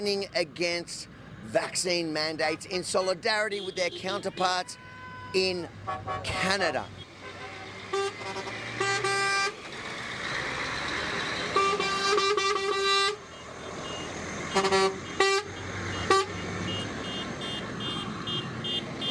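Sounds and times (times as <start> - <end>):
speech: 0.0 - 7.0, 14.6 - 15.0
steady rumble of heavy traffic: 0.0 - 19.0
truck convoy horns honking in Wodonga, Victoria, Australia: 2.9 - 19.0.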